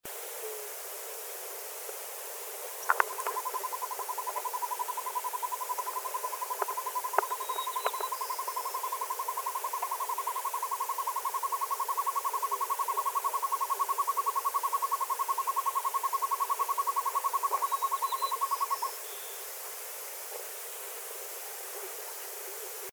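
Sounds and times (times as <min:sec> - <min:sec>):
Northern Hawk Owl Surnia ulula: 0:02.9 - 0:19.5.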